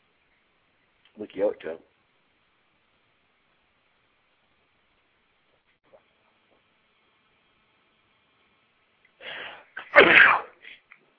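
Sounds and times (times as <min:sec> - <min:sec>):
speech: 0:01.2 - 0:01.9
loud sneeze with breathy inhale: 0:09.2 - 0:10.9.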